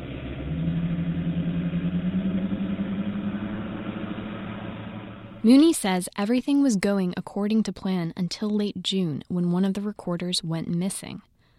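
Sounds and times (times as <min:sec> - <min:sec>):
boat engine drone recorded underwater by a hydrophone: 0:00.0 - 0:05.5
speech: 0:05.4 - 0:11.3.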